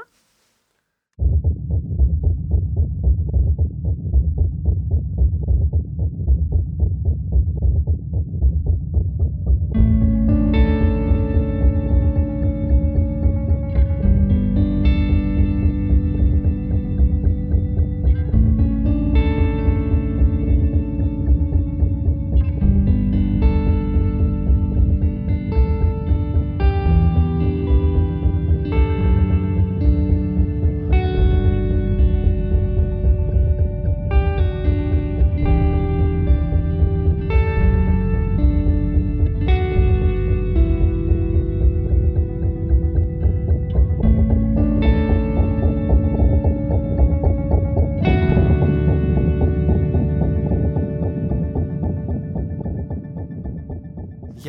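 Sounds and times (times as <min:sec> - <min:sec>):
steady heartbeat: 0:01.2 - 0:54.4.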